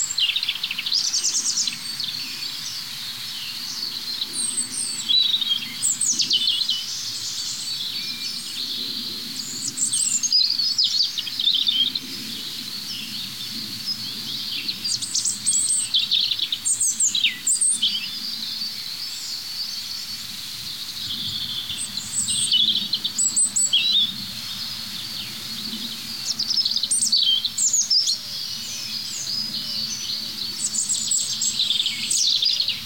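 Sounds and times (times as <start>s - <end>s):
several birds singing: 0.0s - 32.8s.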